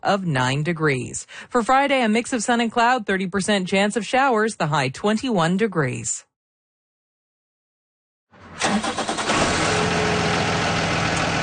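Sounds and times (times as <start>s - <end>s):
speech: 0.0s - 6.3s
large diesel engine of a yellow school bus cranking and idling: 8.4s - 11.4s.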